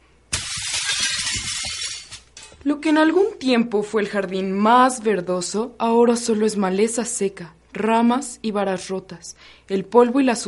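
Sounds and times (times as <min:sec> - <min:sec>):
glass shattering with a sudden loud crash: 0:00.3 - 0:02.6
high tinkling glass shards falling and scattering: 0:00.4 - 0:02.6
speech: 0:02.6 - 0:10.4.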